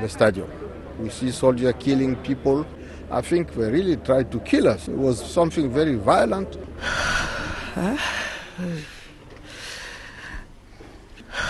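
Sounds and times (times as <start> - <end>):
speech: 0.0 - 7.2, 7.8 - 9.0
heavy labored breathing with ragged gasps: 6.8 - 11.4.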